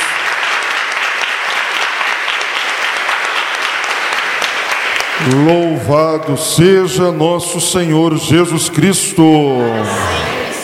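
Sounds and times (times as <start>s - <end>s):
crowd applauding: 0.0s - 5.8s
speech: 5.2s - 10.3s.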